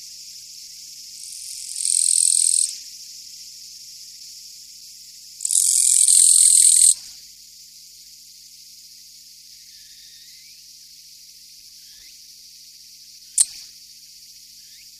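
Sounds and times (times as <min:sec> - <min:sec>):
Japanese katydid high-pitched buzz: 0:01.2 - 0:02.7, 0:05.4 - 0:07.0.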